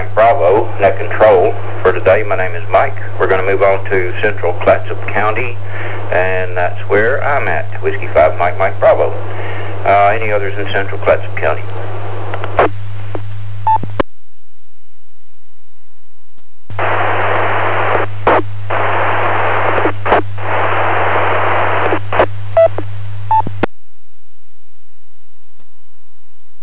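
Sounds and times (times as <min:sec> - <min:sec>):
hissing static from a weak handheld amateur radio transmission: 0:00.0 - 0:14.0, 0:16.7 - 0:23.7
low hum: 0:00.0 - 0:26.6
speech: 0:00.8 - 0:11.9.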